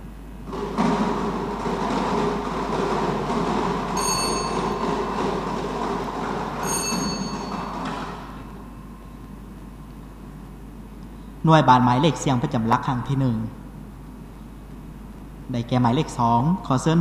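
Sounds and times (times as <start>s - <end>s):
lottery number drum spinning at a government lottery draw: 0.5s - 8.8s
high ringing tones: 3.9s - 9.3s
speech: 11.5s - 13.6s, 15.5s - 17.0s.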